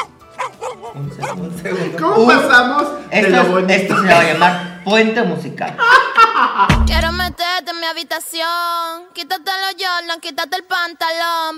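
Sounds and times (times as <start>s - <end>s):
person imitating a barking dog: 0.0s - 1.5s
speech: 0.9s - 6.0s, 6.6s - 11.5s
laughter: 1.0s - 7.3s.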